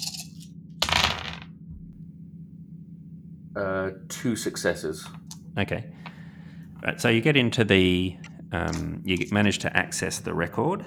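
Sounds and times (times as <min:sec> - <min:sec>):
panic or stress dice rolled onto a hard tabletop for a skill roll: 0:00.0 - 0:01.5
speech: 0:03.6 - 0:06.1, 0:06.8 - 0:10.8.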